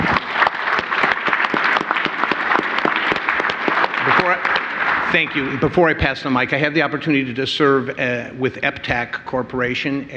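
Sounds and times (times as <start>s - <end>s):
audience at an education and networking event clapping: 0.0s - 6.4s
speech: 5.1s - 10.1s.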